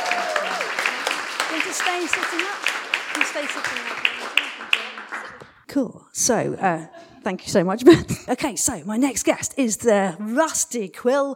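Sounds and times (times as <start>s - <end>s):
live audience applause: 0.0s - 5.5s
scattered voices cheering and calling out in the crowd: 0.0s - 5.5s
speech: 1.7s - 4.8s, 5.7s - 11.3s.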